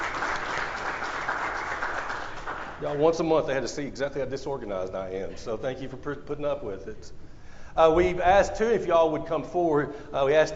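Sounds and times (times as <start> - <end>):
applause from an audience at a gathering: 0.0 - 3.3
speech: 2.8 - 10.5.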